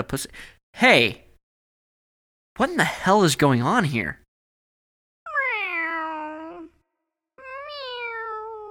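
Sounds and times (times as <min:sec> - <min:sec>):
speech: 0:00.0 - 0:01.2, 0:02.6 - 0:04.2
person meowing like a cat: 0:05.3 - 0:06.8, 0:07.4 - 0:08.6.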